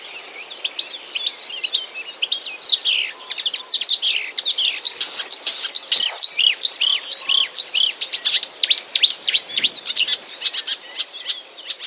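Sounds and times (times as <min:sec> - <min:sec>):
marsh warbler imitating European goldfinch twittering: 0:00.7 - 0:11.8.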